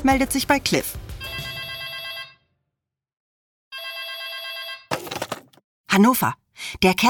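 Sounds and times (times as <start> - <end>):
speech: 0.0 - 1.1, 6.0 - 7.0
telephone ringing with a classic electric bell tone: 1.3 - 2.4, 3.7 - 5.0.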